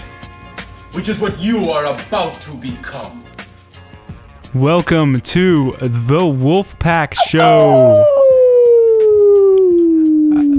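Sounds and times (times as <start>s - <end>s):
speech: 0.9s - 3.4s, 4.5s - 8.1s
wolf howling: 7.2s - 10.5s.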